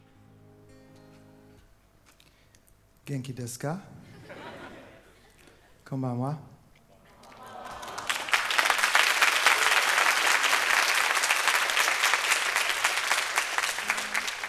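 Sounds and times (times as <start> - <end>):
speech: 3.1 - 4.0, 5.9 - 6.5
laughter: 4.0 - 5.8, 7.1 - 8.5
crowd applauding: 7.1 - 14.4.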